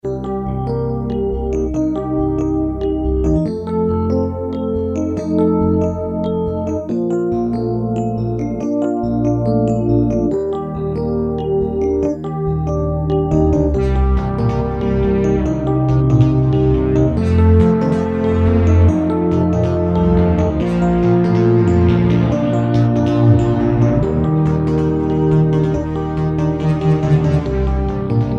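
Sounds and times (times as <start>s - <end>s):
frutiger aero themed music tracks: 0.0s - 28.3s.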